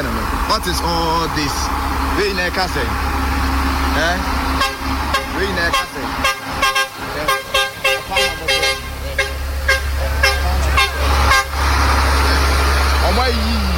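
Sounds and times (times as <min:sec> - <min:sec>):
heavy excavator engine rumbling: 0:00.0 - 0:13.7
speech: 0:00.5 - 0:03.1, 0:04.0 - 0:04.4, 0:05.4 - 0:07.4, 0:13.1 - 0:13.7
horn sounding short toots: 0:04.0 - 0:13.7.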